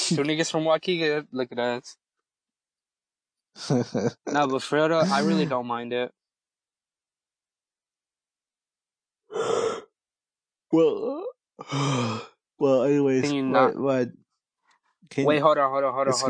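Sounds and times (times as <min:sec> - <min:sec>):
speech: 0:00.1 - 0:02.0, 0:03.6 - 0:06.2, 0:09.3 - 0:09.8, 0:10.7 - 0:14.2, 0:15.1 - 0:16.2
laughter: 0:03.6 - 0:05.5, 0:13.2 - 0:14.0
person yawning: 0:05.0 - 0:05.5, 0:09.3 - 0:09.8, 0:10.8 - 0:12.3.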